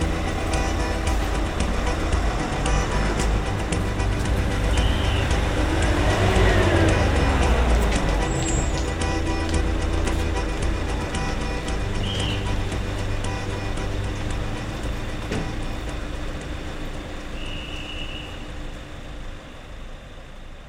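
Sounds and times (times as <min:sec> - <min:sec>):
faint murmuring voices: 0:00.0 - 0:16.4
train pulling away from a station platform: 0:00.0 - 0:20.6.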